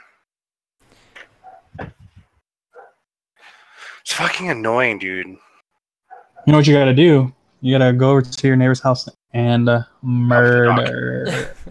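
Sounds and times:
neighbor's dog barking muffled: 1.4 - 1.7, 2.8 - 3.0, 6.1 - 6.5
speech: 4.1 - 5.5, 6.4 - 11.6.

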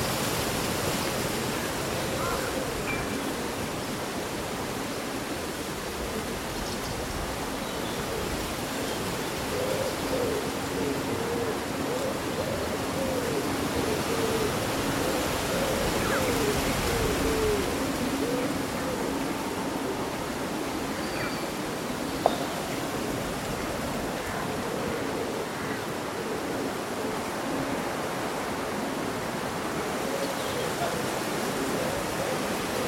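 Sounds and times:
leaves rustling in a cool summer breeze: 0.0 - 32.8.

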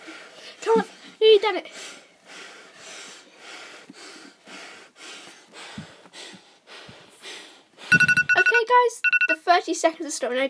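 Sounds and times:
heavy rapid breathing after exercise: 0.0 - 8.2
speech: 0.7 - 2.0, 8.8 - 10.4.

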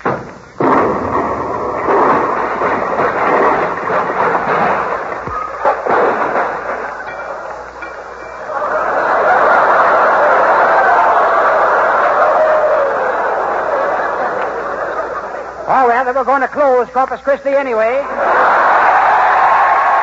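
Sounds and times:
miniature atom bomb dropped on the floor exploding: 0.0 - 7.0
laughter: 8.3 - 15.7, 18.0 - 19.9
speech: 16.2 - 18.4.

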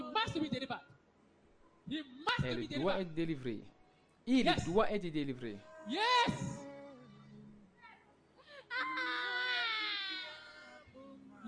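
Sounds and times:
speech: 0.4 - 0.9, 1.9 - 6.5
man crying deeply during a deliverance prayer: 5.6 - 7.4, 8.7 - 11.4.

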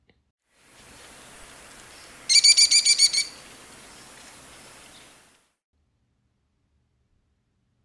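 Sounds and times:
quiet hissy background: 0.5 - 5.6
American kestrel killy call: 2.3 - 3.4.

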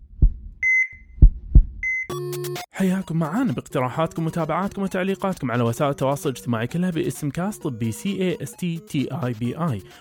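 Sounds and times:
deep thudding heartbeats of heart palpitations: 0.0 - 2.0
speech: 2.8 - 9.9.

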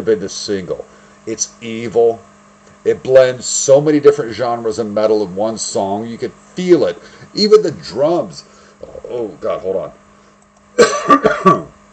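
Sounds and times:
speech: 0.0 - 10.0, 10.8 - 11.7
harsh rapid coughing fit: 10.8 - 11.7.

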